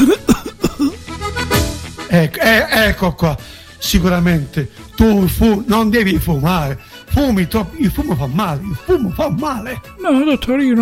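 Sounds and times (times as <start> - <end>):
person coughing: 0.0 - 1.0
speech: 2.2 - 10.7.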